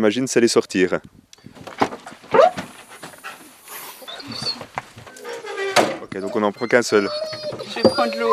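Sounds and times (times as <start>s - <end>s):
speech: 0.0s - 1.2s, 6.2s - 8.3s
excited dog panting inside a car: 2.0s - 8.3s.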